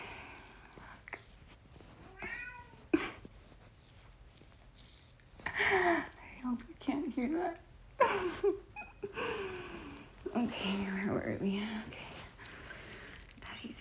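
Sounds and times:
cat meowing: 2.1s - 2.8s
speech: 6.5s - 12.0s.

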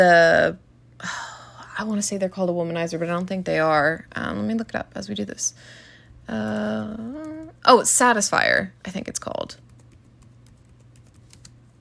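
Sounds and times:
speech: 0.0s - 9.7s
typing on a computer keyboard with one hand: 9.6s - 11.5s.

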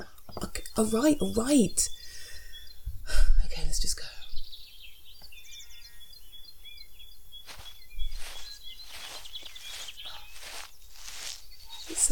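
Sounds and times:
birds chirping in the woods: 0.0s - 12.0s
speech: 0.8s - 2.0s
crunching footsteps: 7.4s - 12.0s.

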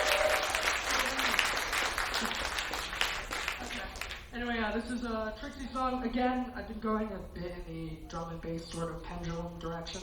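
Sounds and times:
crowd applauding: 0.0s - 4.3s
speech: 4.8s - 10.0s.

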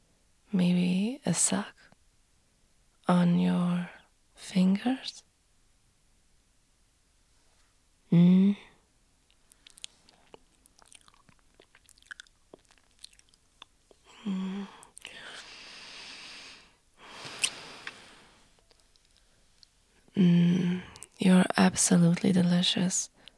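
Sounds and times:
speech: 0.5s - 1.8s, 3.1s - 5.3s, 8.1s - 8.7s, 20.2s - 23.1s
gingerbread cookie being chewed: 9.2s - 14.1s, 17.3s - 18.0s, 18.6s - 19.8s.

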